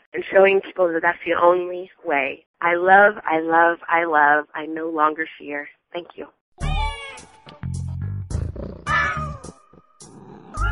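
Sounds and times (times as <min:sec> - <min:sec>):
speech: 0:00.1 - 0:06.4
cat meowing with drawn-out wavering cries: 0:06.6 - 0:07.2, 0:08.8 - 0:09.5, 0:10.2 - 0:10.6
cat making lower rougher growling sounds: 0:08.4 - 0:09.4, 0:10.0 - 0:10.6.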